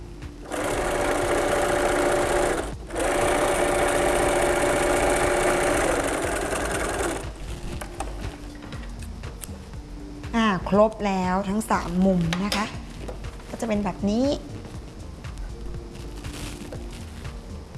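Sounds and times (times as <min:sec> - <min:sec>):
sewing machine stitching a side seam with a backstitch: 0:00.4 - 0:07.4
speech: 0:10.7 - 0:12.8, 0:13.6 - 0:14.6.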